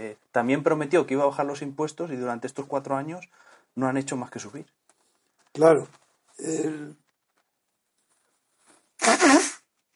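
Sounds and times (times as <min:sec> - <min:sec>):
speech: 0:00.0 - 0:04.8, 0:05.6 - 0:07.0
person sneezing: 0:09.0 - 0:09.6.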